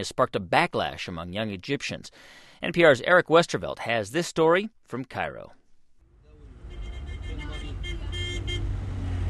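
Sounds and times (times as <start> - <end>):
speech: 0.0 - 5.6
heavy traffic rumbling on the 15th of May bridge in Cairo Egypt: 6.0 - 9.2
car horns honking: 6.2 - 9.0.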